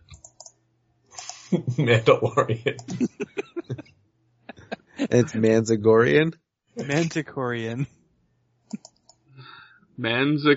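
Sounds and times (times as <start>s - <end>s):
crisp keyboard keystrokes typing a word: 0.1s - 0.5s
laughter: 1.2s - 3.8s, 4.5s - 6.2s, 6.8s - 7.2s
speech: 1.5s - 3.9s, 5.1s - 8.0s, 10.0s - 10.5s.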